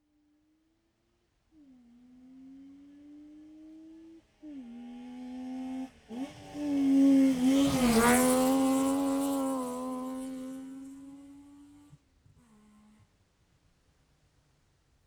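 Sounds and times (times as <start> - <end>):
Saab 92 car passing left to right: 4.9 - 11.8.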